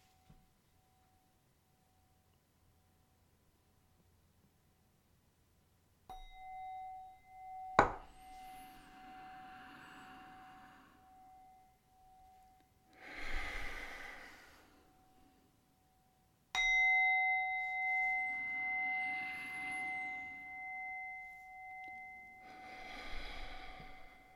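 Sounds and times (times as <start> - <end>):
meditation bell struck with sustained ringing tone: 6.1 - 24.3
soft breathing: 8.0 - 15.8, 17.7 - 24.3.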